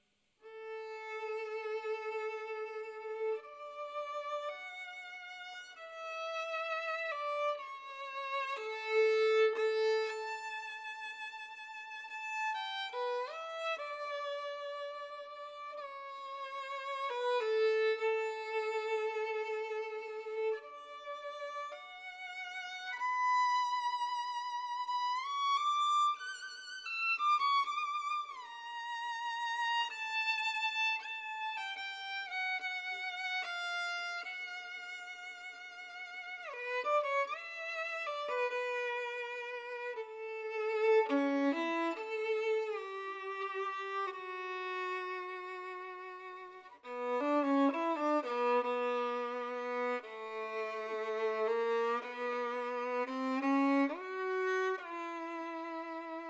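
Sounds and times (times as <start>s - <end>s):
Maggini violin playing: 0.4s - 56.2s.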